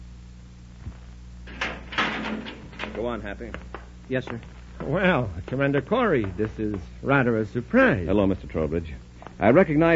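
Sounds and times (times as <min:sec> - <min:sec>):
living compartment door closing with a soft low thud: 0:01.5 - 0:03.2
speech: 0:03.0 - 0:09.9.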